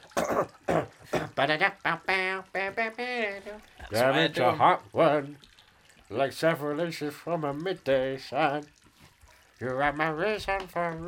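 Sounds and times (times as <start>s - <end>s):
person coughing: 0.0s - 1.4s
speech: 1.4s - 3.0s, 3.9s - 5.5s, 6.1s - 8.8s, 9.6s - 11.0s.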